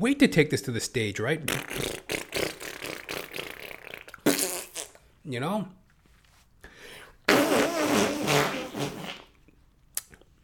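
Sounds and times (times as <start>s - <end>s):
speech: 0.0s - 2.0s, 5.3s - 5.8s
mouth-made fart noise: 1.4s - 5.0s, 7.3s - 9.4s.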